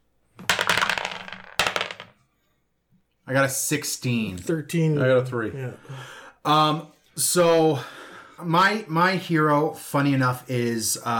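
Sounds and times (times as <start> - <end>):
dice clattering across a hard tabletop: 0.4 - 2.2
speech: 3.3 - 11.1.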